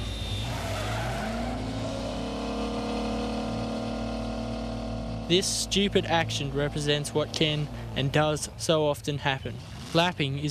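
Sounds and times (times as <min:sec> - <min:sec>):
car tires squealing in a skid braking hard from 150 km/h: 0:00.0 - 0:03.4
rumbling car engine: 0:00.0 - 0:10.4
speech: 0:05.3 - 0:10.4.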